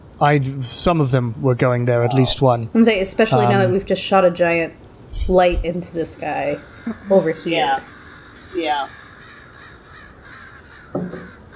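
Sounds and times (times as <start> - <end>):
speech: 0.2 - 9.0, 10.9 - 11.2
crows cawing in a video game forest: 7.8 - 11.0.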